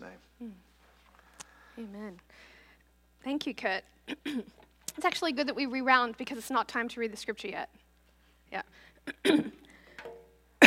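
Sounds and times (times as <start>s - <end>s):
speech: 0.4s - 0.7s, 1.8s - 2.5s, 3.2s - 7.8s, 8.5s - 9.6s
sharp coughs: 4.1s - 4.6s, 9.1s - 9.6s.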